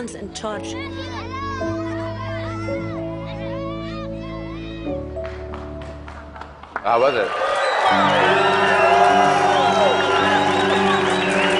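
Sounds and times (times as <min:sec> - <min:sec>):
speech: 0:00.0 - 0:01.8, 0:02.6 - 0:03.1, 0:06.8 - 0:09.4
large audience cheering during a standing ovation: 0:04.3 - 0:11.5.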